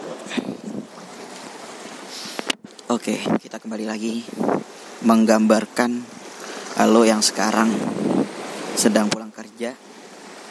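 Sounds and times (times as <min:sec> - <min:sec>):
wind buffeting the microphone: 0:00.0 - 0:01.2, 0:04.1 - 0:04.8, 0:07.0 - 0:09.2
strong waves washing against a beach of very large rocks: 0:00.0 - 0:10.4
speech: 0:02.9 - 0:06.2, 0:06.8 - 0:08.1, 0:08.8 - 0:09.9.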